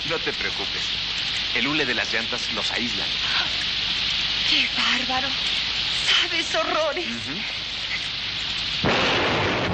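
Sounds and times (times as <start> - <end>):
rain hissing: 0.0 - 9.7
speech: 0.1 - 3.6, 4.5 - 7.6
thunderclap from a lightning storm in the mountains: 8.8 - 9.7.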